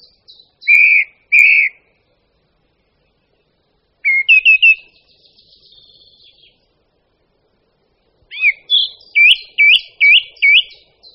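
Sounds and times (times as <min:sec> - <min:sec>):
song thrush whistled notes: 0:00.0 - 0:02.0, 0:04.0 - 0:06.7, 0:08.3 - 0:11.1.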